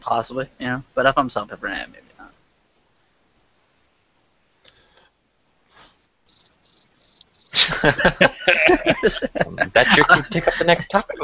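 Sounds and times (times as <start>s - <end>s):
speech: 0.0s - 2.1s, 7.8s - 11.2s
cricket chirping: 6.3s - 7.6s
laughter: 7.5s - 11.2s.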